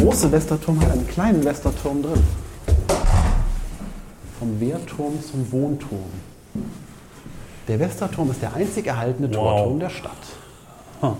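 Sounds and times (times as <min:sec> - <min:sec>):
speech: 0:00.1 - 0:02.4, 0:04.4 - 0:06.9, 0:07.7 - 0:10.4, 0:11.0 - 0:11.1
door creaking open: 0:02.9 - 0:03.6.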